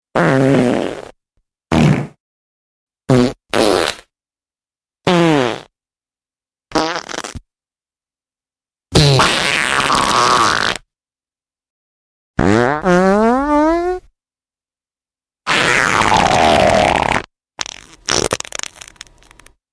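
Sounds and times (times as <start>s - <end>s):
fart tone: 0.2s - 2.2s, 3.1s - 4.1s, 5.1s - 5.7s, 6.7s - 7.4s, 9.0s - 10.9s, 12.4s - 14.1s, 15.5s - 19.5s.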